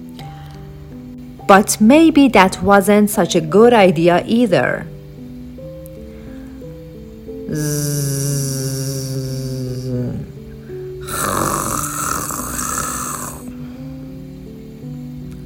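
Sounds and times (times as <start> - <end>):
speech: 1.5 - 4.9, 7.5 - 8.0
father snoring loudly with a rasping rattle: 7.5 - 14.0.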